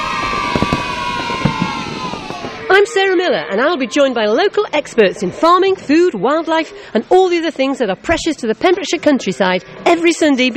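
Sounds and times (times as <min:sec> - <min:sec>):
fireworks crackling and popping at a free fireworks event in Milford Haven: 0:00.0 - 0:02.7
crowd roaring and cheering at a fireworks event in Milford Haven: 0:00.0 - 0:06.6
speech: 0:02.8 - 0:10.5.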